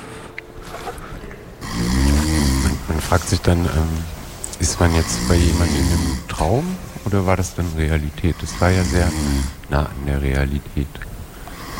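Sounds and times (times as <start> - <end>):
quieter rumbling breath: 0.0 - 10.2, 11.1 - 11.7
deep rattling snore: 1.6 - 9.7, 11.5 - 11.7
speech: 3.0 - 11.1.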